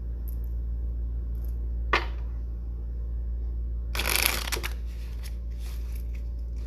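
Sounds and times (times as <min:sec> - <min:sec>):
steady low hum: 0:00.0 - 0:06.6
tarot cards being shuffled: 0:04.0 - 0:06.6.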